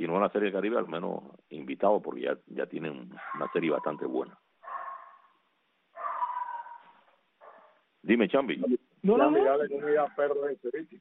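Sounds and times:
speech: 0:00.1 - 0:04.4, 0:08.0 - 0:11.0
dog barking: 0:03.2 - 0:07.9.

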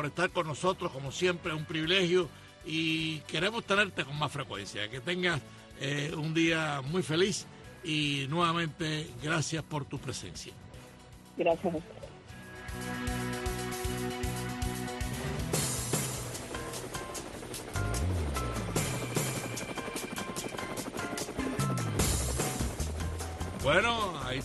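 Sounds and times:
speech: 0:00.0 - 0:10.6, 0:11.4 - 0:12.1, 0:23.6 - 0:24.4
music: 0:00.0 - 0:24.4
helicopter rotor blades chopping: 0:13.3 - 0:24.4.

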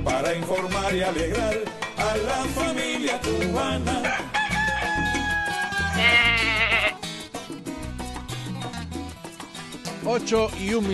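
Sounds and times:
bouncy musical backing with steady low beats: 0:00.0 - 0:10.9
speech: 0:00.1 - 0:04.4, 0:10.1 - 0:10.9
rooster crowing: 0:03.9 - 0:07.0.

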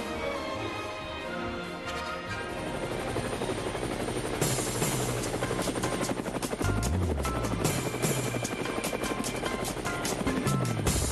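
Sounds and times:
loud helicopter engine whine: 0:00.2 - 0:11.0
helicopter rotor blades thudding in a fast steady chop: 0:02.5 - 0:11.0.

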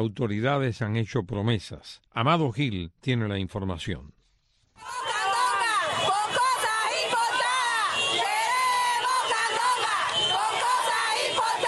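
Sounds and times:
speech: 0:00.0 - 0:04.2, 0:04.8 - 0:05.1
protest crowd chanting slogans: 0:04.8 - 0:11.6.

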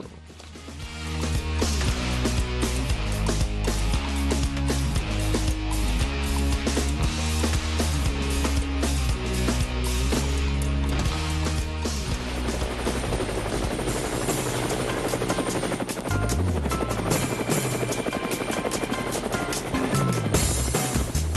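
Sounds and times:
helicopter rotor chopping over engine whine: 0:00.0 - 0:21.3.

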